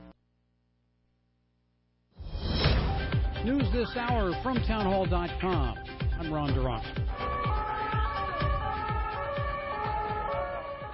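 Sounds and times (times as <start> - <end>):
rhythmic low thumps: 2.3 - 10.9
speech: 3.4 - 7.0
emergency sirens wailing at a crash scene: 7.1 - 10.9.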